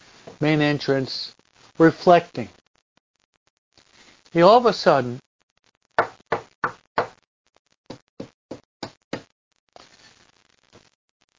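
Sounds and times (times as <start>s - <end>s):
speech: 0.4s - 2.6s, 4.4s - 5.2s
knocking on a door: 6.0s - 7.1s.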